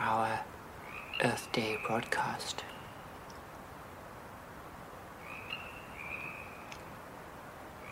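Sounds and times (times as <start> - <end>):
steady outdoor hiss: 0.0 - 7.9
faint sparse frog chorus before dawn: 0.8 - 3.2, 5.2 - 6.8
speech: 1.2 - 2.7.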